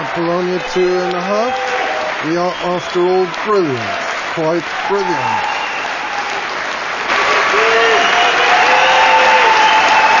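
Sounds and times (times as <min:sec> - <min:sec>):
large crowd of fans applauding and cheering: 0:00.0 - 0:10.1
speech: 0:00.2 - 0:05.6
whistles: 0:05.3 - 0:06.1, 0:07.7 - 0:10.1.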